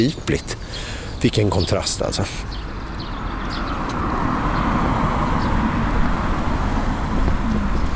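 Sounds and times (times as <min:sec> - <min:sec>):
speech: 0:00.0 - 0:02.6
dense road traffic rumble: 0:00.0 - 0:07.9
faint wind noise on the microphone: 0:02.6 - 0:07.9.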